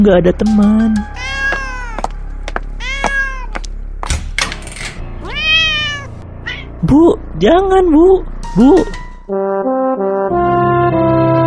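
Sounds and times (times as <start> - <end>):
speech: 0.0 - 1.3, 6.8 - 11.0
cat meowing: 1.0 - 2.0, 2.8 - 3.7, 5.2 - 6.8.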